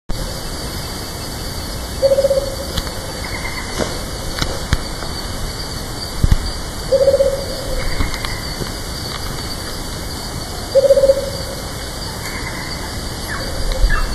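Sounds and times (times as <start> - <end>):
Micrastur ruficollis calling: 2.0 - 3.9, 6.9 - 8.6, 10.7 - 14.1.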